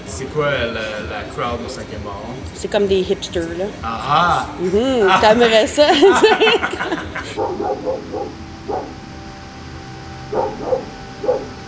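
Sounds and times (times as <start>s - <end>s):
speech: 0.2s - 8.9s
laughter: 3.8s - 7.4s
dogs barking: 5.9s - 9.1s, 10.2s - 11.6s.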